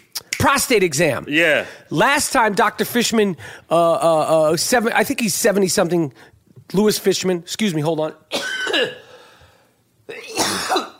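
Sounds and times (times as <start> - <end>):
speech: 0.4 - 9.0
man coughing hard: 8.3 - 9.2, 10.1 - 10.9.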